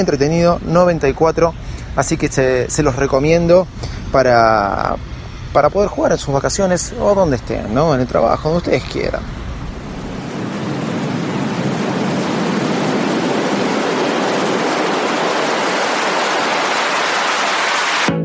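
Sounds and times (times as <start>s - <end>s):
speech: 0.0s - 9.4s
sea waves washing in: 8.7s - 18.1s.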